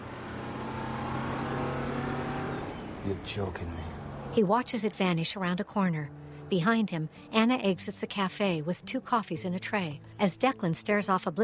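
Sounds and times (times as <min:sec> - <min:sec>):
bus speeding off down a street: 0:00.0 - 0:07.8
speech: 0:03.1 - 0:11.4.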